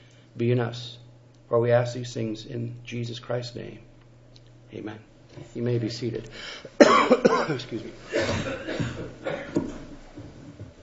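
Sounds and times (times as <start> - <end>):
speech: 0.4 - 3.9, 4.7 - 9.6
person coughing roughly: 6.8 - 9.7.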